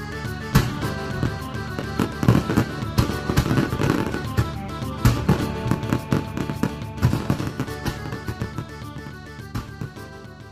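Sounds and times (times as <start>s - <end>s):
fireworks exploding: 0.0s - 10.5s.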